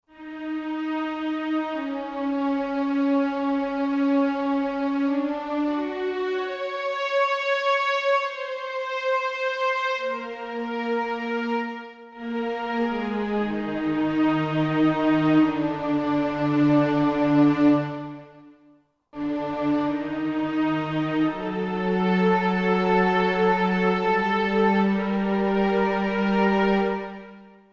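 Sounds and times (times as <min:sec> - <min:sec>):
synthesizer orchestral strings piano-forte: 0:00.1 - 0:18.5, 0:19.2 - 0:27.6.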